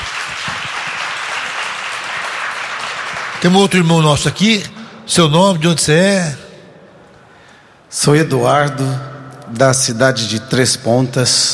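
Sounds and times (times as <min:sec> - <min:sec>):
audience applause: 0:00.0 - 0:04.1
speech: 0:03.4 - 0:06.4, 0:07.9 - 0:11.5.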